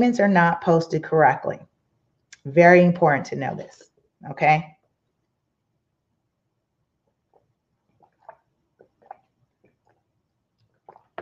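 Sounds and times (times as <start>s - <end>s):
speech: 0.0s - 1.7s, 2.4s - 4.8s
person sipping water: 7.1s - 11.2s.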